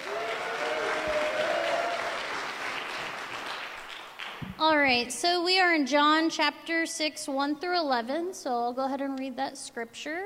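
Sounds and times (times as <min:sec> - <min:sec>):
crowd applauding: 0:00.0 - 0:04.6
speech: 0:04.5 - 0:10.2.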